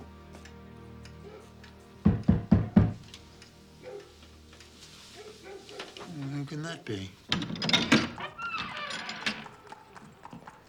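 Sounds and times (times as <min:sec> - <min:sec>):
sharp knocks on a wooden door: 0:02.1 - 0:03.0
faint rustle: 0:03.1 - 0:07.3
speech: 0:06.5 - 0:07.9.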